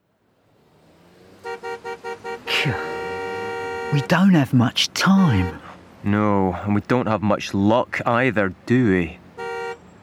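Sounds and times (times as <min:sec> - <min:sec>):
traffic jam rumble: 0:00.0 - 0:10.0
car horn toots in a traffic jam: 0:01.4 - 0:05.8, 0:09.3 - 0:10.0
speech: 0:02.6 - 0:02.9, 0:03.9 - 0:09.2.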